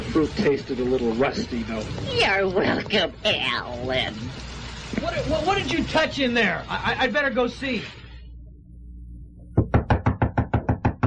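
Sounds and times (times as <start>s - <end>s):
speech: 0.1s - 8.0s
knocking on a wooden front door: 9.6s - 11.0s.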